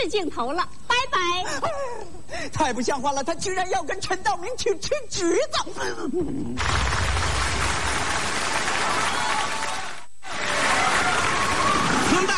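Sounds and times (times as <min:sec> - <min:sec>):
speech: 0:00.0 - 0:07.1
audience applause: 0:06.6 - 0:12.3.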